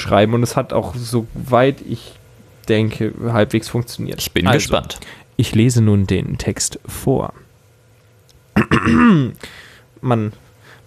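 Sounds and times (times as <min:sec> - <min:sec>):
speech: 0:00.0 - 0:07.4, 0:08.6 - 0:10.8
person clearing throat: 0:08.6 - 0:09.4.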